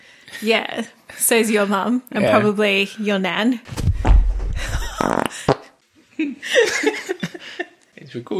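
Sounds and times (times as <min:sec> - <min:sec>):
speech: 0:00.4 - 0:03.8, 0:08.2 - 0:08.3
rustling: 0:03.7 - 0:05.0
man farting into the microphone: 0:04.0 - 0:05.7
laughter: 0:06.2 - 0:07.8.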